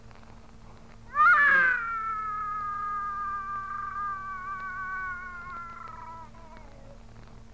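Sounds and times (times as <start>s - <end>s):
low background hum: 0.0s - 7.5s
cat yowling: 1.1s - 7.0s.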